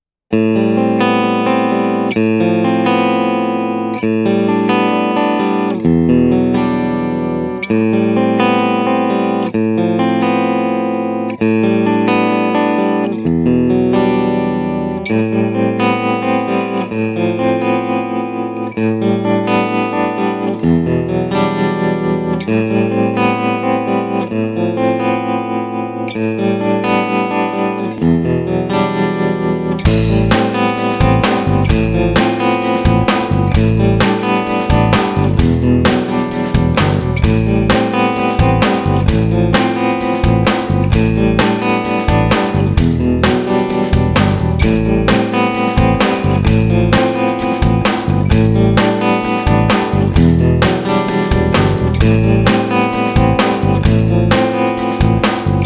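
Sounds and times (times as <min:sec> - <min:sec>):
clean vintage guitar through tube mic preamp: 0:00.3 - 0:55.6
band playing with guitar: 0:29.9 - 0:55.6.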